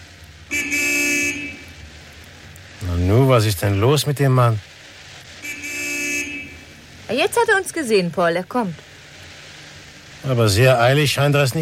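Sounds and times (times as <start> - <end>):
car horn honking: 0.5 - 1.8, 5.4 - 6.8
speech: 3.0 - 4.7, 7.1 - 8.9, 10.3 - 11.6.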